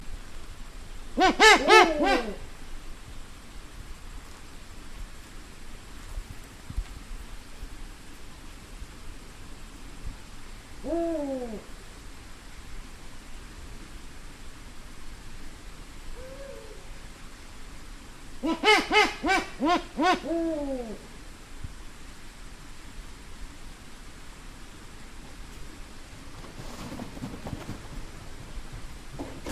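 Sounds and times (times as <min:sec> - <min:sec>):
eagle owls calling: 0:01.2 - 0:02.5, 0:10.8 - 0:11.7, 0:16.1 - 0:17.0, 0:18.4 - 0:21.1.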